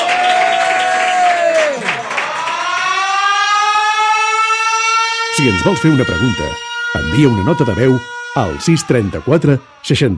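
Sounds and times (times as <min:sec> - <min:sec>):
loud applause and cheering: 0:00.0 - 0:03.6
wailing siren-like tone: 0:01.3 - 0:10.1
speech: 0:05.4 - 0:10.1.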